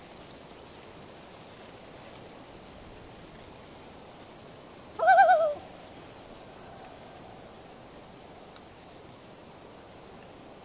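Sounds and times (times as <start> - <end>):
loon wavering cry: 5.0 - 5.7.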